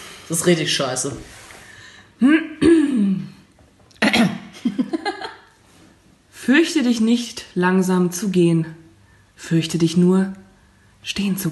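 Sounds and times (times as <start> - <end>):
speech: 0.3 - 1.4, 2.2 - 2.4, 6.5 - 8.8, 9.4 - 10.4, 11.0 - 11.5
person clearing throat: 2.2 - 3.4, 4.0 - 4.5.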